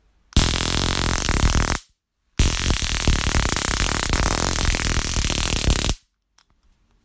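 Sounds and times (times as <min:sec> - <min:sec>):
police electroshock stun gun crackling: 0:00.4 - 0:06.0.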